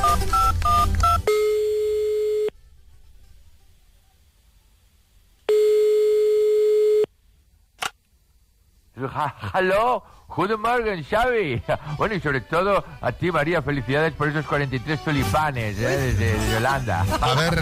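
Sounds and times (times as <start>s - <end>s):
touch-tone dialing beeps of outgoing call: 0.0s - 2.5s
telephone ringback tones: 0.0s - 2.6s, 5.5s - 7.1s
laughter: 9.0s - 10.5s, 11.4s - 12.4s, 15.8s - 17.5s
speech: 9.2s - 17.5s.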